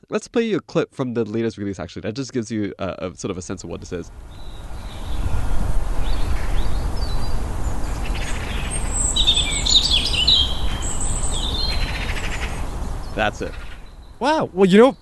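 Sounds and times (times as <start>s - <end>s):
speech: 0.1s - 4.5s, 13.2s - 13.6s, 14.2s - 15.0s
steady low outdoor rumble: 2.5s - 15.0s
several birds chirping and trilling in open countryside: 3.8s - 15.0s.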